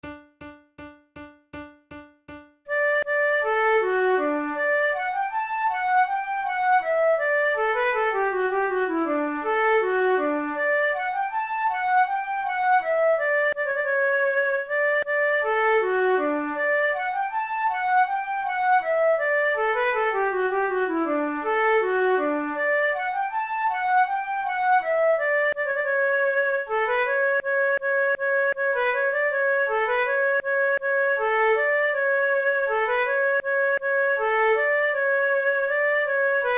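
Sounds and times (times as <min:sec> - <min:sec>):
baroque flute piece: 0:02.7 - 0:36.5.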